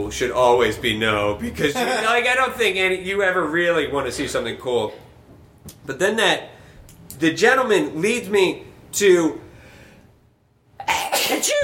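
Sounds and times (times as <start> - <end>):
speech: 0.0 - 5.0, 5.6 - 6.5, 7.1 - 9.4
laughter: 1.6 - 2.3
loud sneeze: 10.8 - 11.6.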